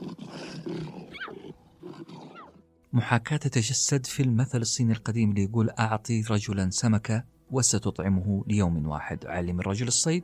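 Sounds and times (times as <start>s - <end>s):
lioness growling while play-fighting with her cub: 0.0s - 2.7s
speech: 3.0s - 10.2s.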